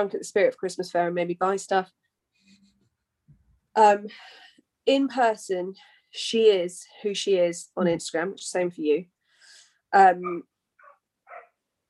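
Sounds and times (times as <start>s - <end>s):
speech: 0.0s - 2.0s, 3.8s - 9.1s, 9.9s - 10.5s
puppy barking: 10.8s - 11.6s.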